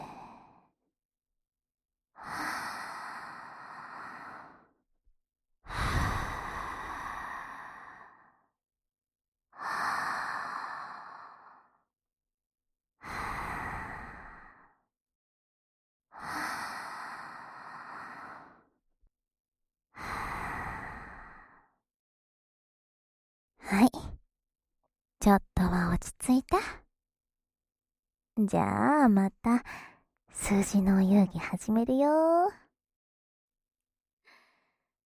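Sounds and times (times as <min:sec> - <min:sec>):
slow deep human breathing, inhaling and exhaling: 0:02.2 - 0:04.7, 0:05.7 - 0:08.5, 0:09.6 - 0:11.8, 0:13.0 - 0:14.8, 0:16.1 - 0:18.8, 0:20.0 - 0:21.8, 0:34.2 - 0:34.9
speech: 0:25.2 - 0:26.8, 0:28.4 - 0:32.6.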